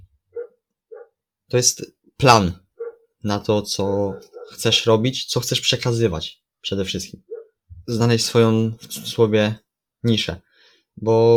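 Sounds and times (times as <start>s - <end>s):
dog barking: 0.3s - 1.2s, 2.8s - 3.1s, 4.1s - 4.6s, 7.3s - 7.6s
speech: 1.5s - 2.6s, 3.2s - 7.3s, 7.9s - 11.3s.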